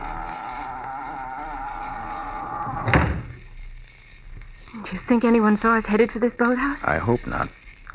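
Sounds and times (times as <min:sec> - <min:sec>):
door thudding shut: 0:02.8 - 0:03.4
speech: 0:04.9 - 0:07.9.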